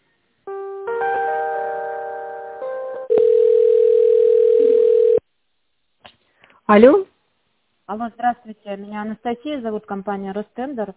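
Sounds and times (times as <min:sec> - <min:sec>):
layered electronic telephone line tones during a call transfer: 0:03.1 - 0:05.2
speech: 0:06.7 - 0:07.1, 0:07.9 - 0:10.9.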